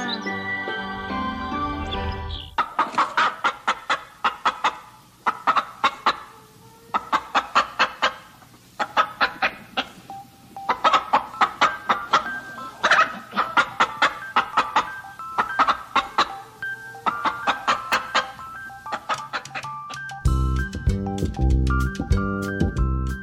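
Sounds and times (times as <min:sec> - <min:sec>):
short musical jingle-like tones: 0:00.0 - 0:02.5, 0:10.1 - 0:23.2
chickens clucking: 0:01.6 - 0:20.7.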